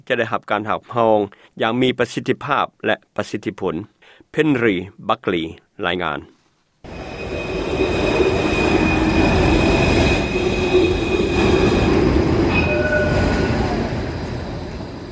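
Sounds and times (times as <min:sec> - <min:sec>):
speech: 0:00.1 - 0:06.4
tram or train wheel squeal: 0:06.9 - 0:15.0
tram or train rumbling along the rails in Melbourne: 0:06.9 - 0:15.1.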